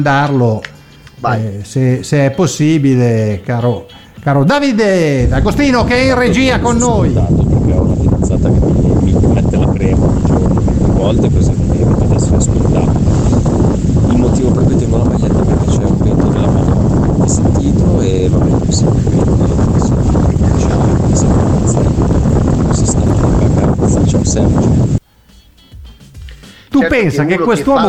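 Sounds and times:
speech: 0.0s - 8.9s, 11.0s - 11.8s, 27.0s - 27.8s
loud wind buffeting an unprotected microphone: 5.2s - 25.0s.

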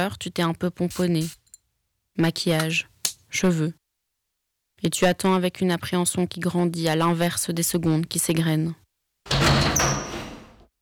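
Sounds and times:
speech: 0.0s - 1.4s, 2.2s - 3.8s, 4.8s - 9.6s
heavy metal prison cell door rolling open with grinding scraping and squeal: 9.3s - 10.7s.

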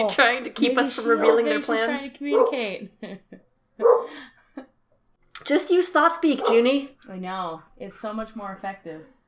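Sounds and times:
speech: 0.0s - 4.3s, 5.4s - 9.2s
dog barking and yipping: 2.3s - 2.6s, 3.8s - 4.1s, 6.4s - 6.7s.

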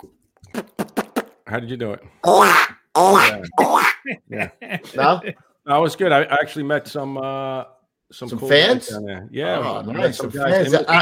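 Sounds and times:
speech: 1.5s - 11.0s
person imitating a duck call quack: 2.2s - 4.3s
laughter: 3.0s - 5.4s.

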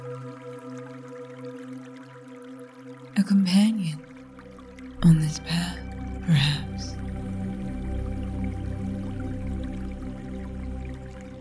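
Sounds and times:
creek water flowing with faint trickling: 0.0s - 11.4s
speech: 3.2s - 4.0s.

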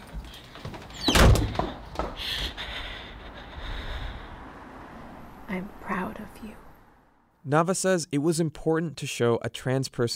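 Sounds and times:
heavy door thudding shut with a brief rattle: 1.0s - 2.2s
speech: 5.5s - 6.7s, 7.4s - 10.1s.

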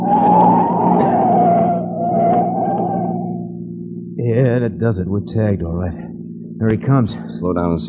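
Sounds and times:
car tires squealing through a sharp turn: 0.0s - 3.4s
car engine rumbling: 0.0s - 7.8s
speech: 4.8s - 7.8s.

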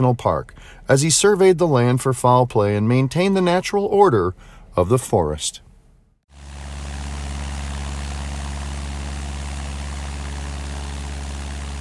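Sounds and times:
speech: 0.0s - 5.7s
small propeller plane engine droning in flight over Yellowstone National Park: 6.4s - 11.7s.

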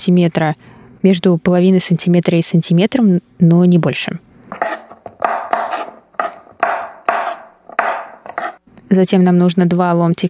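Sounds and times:
speech: 0.0s - 4.8s, 8.9s - 10.2s
knife chopping mushrooms on a cutting board: 4.5s - 8.6s.

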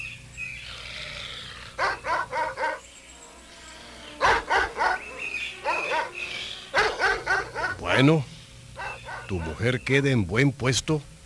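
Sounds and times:
faint outdoor background: 0.0s - 11.2s
hunting dogs barking: 1.4s - 2.9s, 4.1s - 8.1s, 8.8s - 9.7s
speech: 8.0s - 8.3s, 9.3s - 11.1s.

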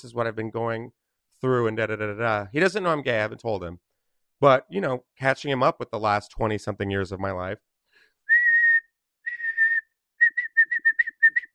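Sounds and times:
speech: 0.0s - 7.7s
voice imitating a blown whistle: 8.3s - 11.5s.

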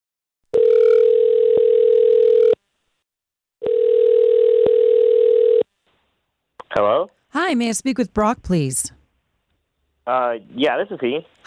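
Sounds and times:
outgoing telephone call electronic ring tones: 0.5s - 2.6s, 3.6s - 5.6s
speech: 7.5s - 9.0s, 10.1s - 11.4s.

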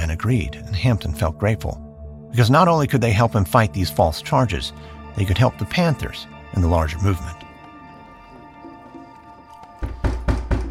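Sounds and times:
speech: 0.1s - 7.4s
heavy knocking on a door downstairs: 9.8s - 10.7s.

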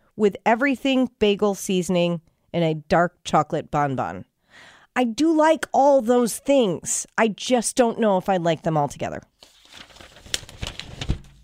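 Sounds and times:
speech: 0.2s - 9.9s
paper crinkling and crunching: 9.4s - 11.4s.

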